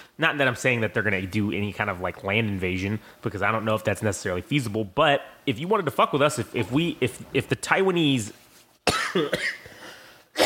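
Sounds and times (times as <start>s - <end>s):
speech: 0.2s - 9.7s
dry coughs from a person with a dry throat: 8.8s - 10.4s
throat clearing from a person with a dry throat: 8.9s - 9.8s.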